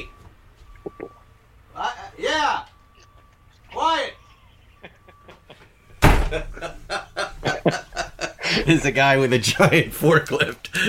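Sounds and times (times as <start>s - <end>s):
laughter: 3.5s - 10.8s
door knocking and bumping as it settles: 6.0s - 6.5s
door shutting with a thud: 6.0s - 6.6s
speech: 8.7s - 10.8s.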